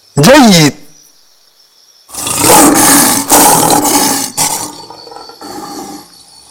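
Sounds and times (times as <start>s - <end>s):
speech: 0.2s - 0.8s
lion roaring: 2.1s - 6.2s.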